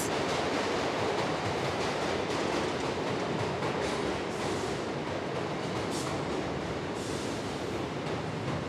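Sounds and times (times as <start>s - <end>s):
subway train roaring through a metro station: 0.0s - 8.6s.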